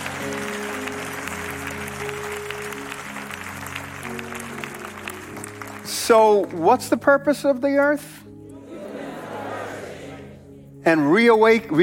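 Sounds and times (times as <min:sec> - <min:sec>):
audience clapping hands: 0:00.0 - 0:06.6
speech: 0:06.1 - 0:08.2, 0:10.9 - 0:11.8.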